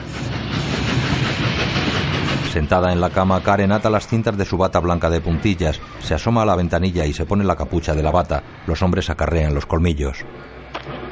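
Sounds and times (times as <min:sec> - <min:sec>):
hiss of a stopping train: 0:00.0 - 0:03.5
train on its rails coming to a stop: 0:00.0 - 0:11.0
speech: 0:02.6 - 0:10.6.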